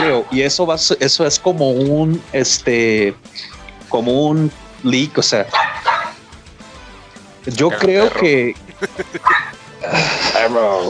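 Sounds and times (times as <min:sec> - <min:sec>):
speech: 0:00.2 - 0:05.7, 0:07.4 - 0:10.8
dog barking: 0:05.5 - 0:06.2, 0:09.2 - 0:09.6
laughter: 0:07.7 - 0:10.5.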